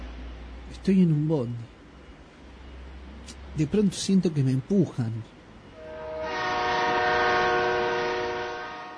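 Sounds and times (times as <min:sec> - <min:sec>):
speech: 0:00.8 - 0:01.7, 0:03.6 - 0:05.4
approaching train sounding a chord-like horn: 0:05.8 - 0:08.9.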